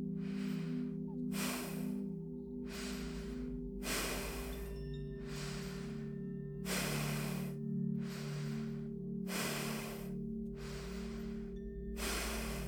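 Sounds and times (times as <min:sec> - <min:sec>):
deep breathing in and out through nose: 0:00.1 - 0:12.6.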